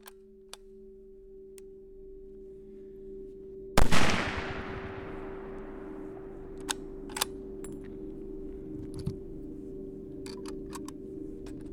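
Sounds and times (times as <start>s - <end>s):
steady low hum: 0.0s - 11.7s
gunshot from a hunting rifle or revolver: 3.8s - 5.8s.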